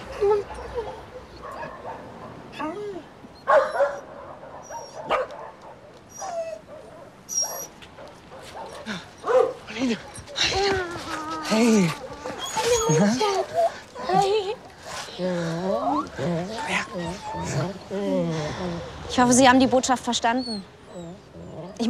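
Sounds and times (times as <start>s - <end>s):
many dogs barking, yipping and whining in a kennel: 0.0s - 2.8s, 3.5s - 10.8s, 11.6s - 20.0s, 21.1s - 21.8s
speech: 19.2s - 20.8s.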